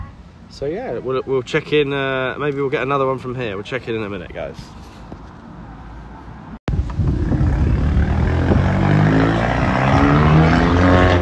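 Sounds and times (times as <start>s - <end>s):
speech: 0.5s - 4.8s
motorbike engine roaring past in Bristol: 6.7s - 11.2s.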